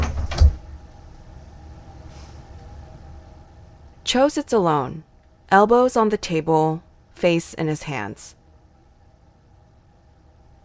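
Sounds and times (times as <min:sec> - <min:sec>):
door slamming shut: 0:00.0 - 0:00.6
speech: 0:04.1 - 0:08.4.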